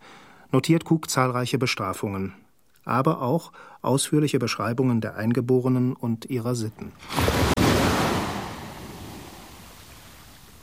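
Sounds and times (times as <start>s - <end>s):
speech: 0.5s - 7.5s
heavy ocean surf breaking on shore: 6.9s - 10.6s.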